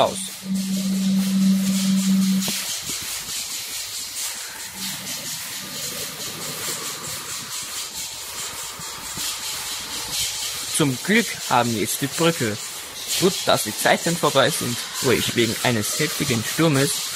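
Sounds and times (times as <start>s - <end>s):
speech: 0.0s - 0.7s, 10.8s - 17.1s
low sustained horn-like tone: 0.0s - 2.8s, 4.8s - 5.5s
steam locomotive running hard against a storm with hissing steam: 0.0s - 17.1s.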